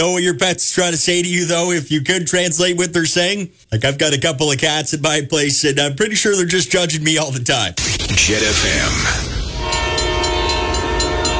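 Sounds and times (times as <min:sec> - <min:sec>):
speech: 0:00.0 - 0:09.4
Ontario Northland passenger train rumble: 0:08.4 - 0:11.3
Ontario Northland passenger train horn-like tones: 0:09.4 - 0:11.3.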